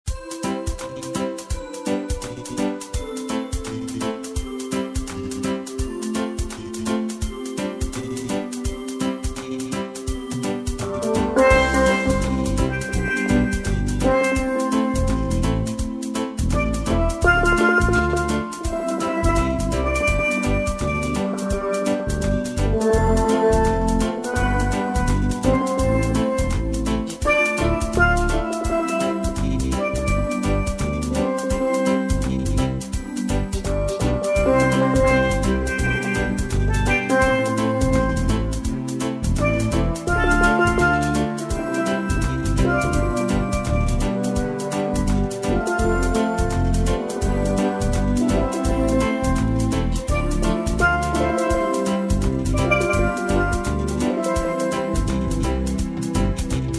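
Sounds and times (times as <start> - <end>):
steel drum playing: 0.1 - 56.7.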